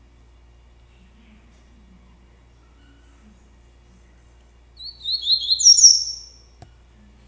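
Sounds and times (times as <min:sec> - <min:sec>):
double-collared seedeater singing slurred notes and a high trill: 0:04.8 - 0:06.4.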